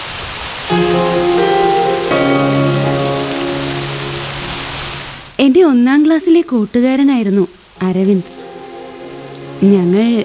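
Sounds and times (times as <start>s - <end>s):
steady rain: 0.0s - 10.2s
sustained musical tones: 0.7s - 5.2s, 7.8s - 10.2s
speech: 5.5s - 8.4s, 9.6s - 10.2s.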